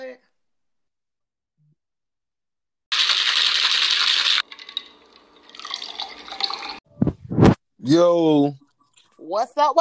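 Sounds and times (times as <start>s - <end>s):
drink pouring into a cup: 2.9s - 6.8s
trickling drips: 2.9s - 6.8s
speech: 7.8s - 8.6s, 9.3s - 9.7s.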